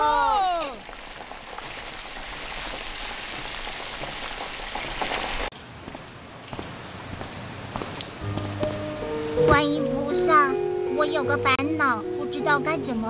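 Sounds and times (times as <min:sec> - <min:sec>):
steady dense rain pouring: 0:00.0 - 0:10.3
speech: 0:11.1 - 0:13.0.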